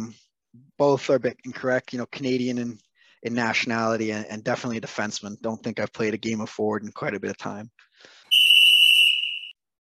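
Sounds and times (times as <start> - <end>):
speech: 0.8 - 8.2
sharp loud whistle blast: 8.3 - 9.6.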